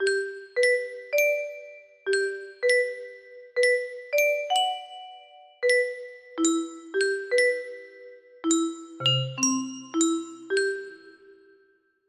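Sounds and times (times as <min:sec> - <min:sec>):
music box melody: 0:00.0 - 0:11.6.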